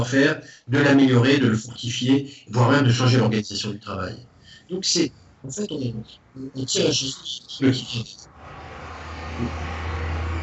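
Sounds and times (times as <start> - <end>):
speech: 0.0 - 8.3, 9.4 - 9.9
broad wash of road noise: 7.0 - 10.4
heavy truck rumbling past outside: 8.3 - 10.4.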